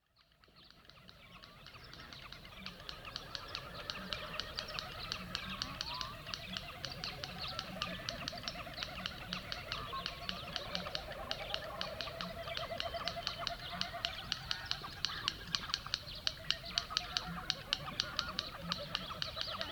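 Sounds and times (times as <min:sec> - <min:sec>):
snipe calling at night: 0:00.9 - 0:19.7.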